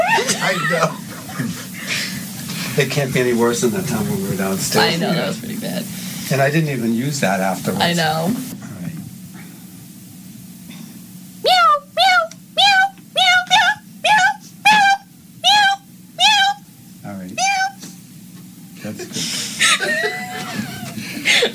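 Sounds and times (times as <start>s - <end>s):
people laughing: 0.0s - 2.3s, 18.8s - 21.5s
speech: 0.3s - 1.6s, 2.8s - 8.5s
person imitating a cat meowing frantically: 11.4s - 16.6s, 17.3s - 17.8s.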